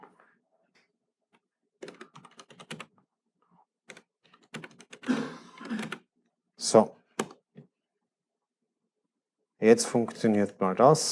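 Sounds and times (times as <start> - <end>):
fingers typing on a computer keyboard: 1.8 - 2.9, 3.9 - 6.0
speech: 6.7 - 7.0, 9.6 - 11.1.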